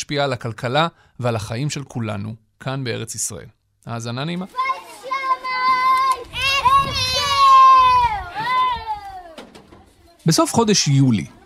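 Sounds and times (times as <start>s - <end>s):
speech: 0.0s - 4.9s, 10.3s - 11.4s
murmur of children playing outdoors in a schoolyard in Jerusalem: 4.4s - 11.4s
children calling and shouting in a Talmud Torah schoolyard in Jerusalem: 4.5s - 10.0s.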